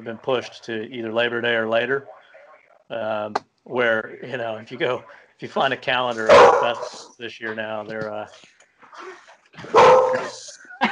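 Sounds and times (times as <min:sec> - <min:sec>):
speech: 0:00.0 - 0:02.2, 0:02.9 - 0:10.6
dog barking and yipping: 0:06.3 - 0:07.0, 0:09.7 - 0:10.4.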